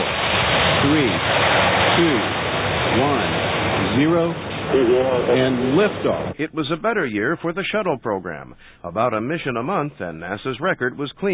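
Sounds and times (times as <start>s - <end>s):
rushing flood water pouring in: 0.0s - 6.4s
speech: 0.8s - 1.4s, 2.0s - 3.3s, 4.0s - 11.3s.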